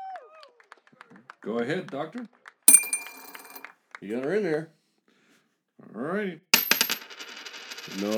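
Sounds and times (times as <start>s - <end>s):
speech: 1.4s - 2.4s, 4.0s - 4.8s, 6.0s - 6.5s, 7.9s - 8.1s
dime tossed into an ashtray in a game of chance: 2.7s - 3.6s, 6.6s - 8.1s.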